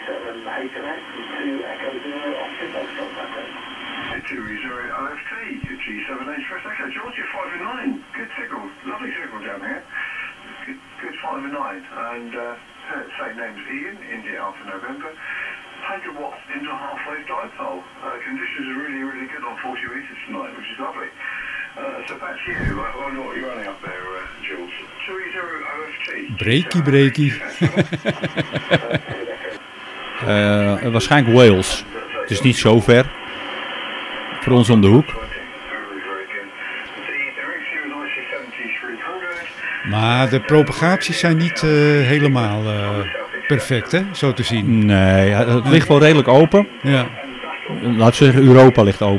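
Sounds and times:
steady hiss of shortwave static on amateur radio 40-meter band: 0.0 - 49.1
thin band-limited voices on amateur radio 40-meter band: 0.0 - 49.1
speech: 0.4 - 29.2, 30.2 - 33.2, 34.5 - 35.3, 39.9 - 49.1
laughter: 27.3 - 29.6.

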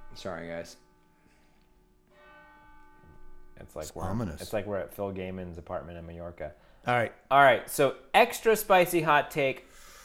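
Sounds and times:
church bells ringing: 0.0 - 5.2
speech: 0.2 - 0.8, 3.6 - 9.9.

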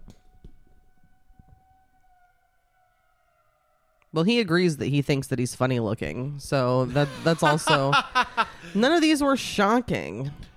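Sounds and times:
civil defense siren wailing heard through a window: 0.0 - 4.5
speech: 4.2 - 10.5
laughter: 6.8 - 9.1.

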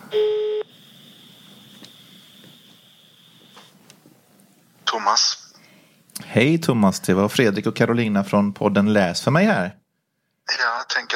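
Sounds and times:
quiet hissing phone line on speaker: 0.0 - 3.9
faint high whine on a phone line: 0.0 - 4.0
loud steady electronic tone of a phone call on speaker: 0.1 - 0.7
speech: 5.1 - 5.4, 6.3 - 9.8, 10.5 - 11.1.

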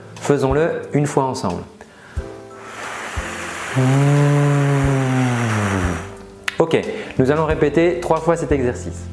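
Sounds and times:
speech: 0.3 - 1.8, 3.7 - 4.8, 6.6 - 9.1
person vocally imitating wind in a forest: 3.5 - 6.2.

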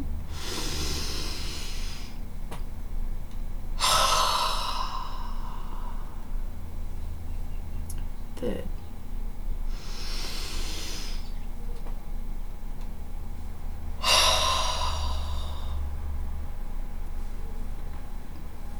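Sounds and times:
low hum: 0.0 - 18.7
forceful breathy exhalations during a guided energy-protection exercise: 0.3 - 2.2, 3.8 - 6.3, 9.7 - 11.3, 14.0 - 15.9.

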